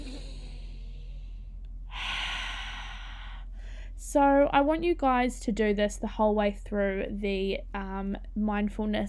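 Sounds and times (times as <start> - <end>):
deep breath in and out: 0.0 - 4.0
speech: 4.0 - 9.0.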